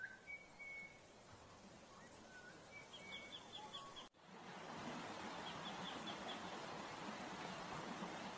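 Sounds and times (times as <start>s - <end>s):
bird whistles and chirps: 0.0s - 1.0s, 2.0s - 4.1s
flowing water: 0.0s - 8.3s.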